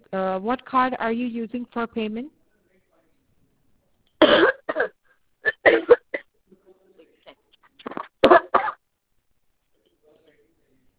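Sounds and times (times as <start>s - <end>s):
speech: 0.1s - 2.4s
harsh coughing: 4.2s - 6.3s, 7.8s - 8.8s.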